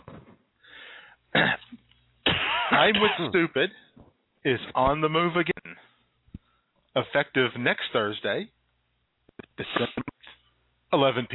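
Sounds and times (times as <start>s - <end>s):
person clearing their throat: 1.4s - 3.4s, 9.4s - 10.3s
person coughing: 1.4s - 3.4s
speech: 2.8s - 5.6s, 7.0s - 8.6s, 9.6s - 9.9s, 11.0s - 11.3s.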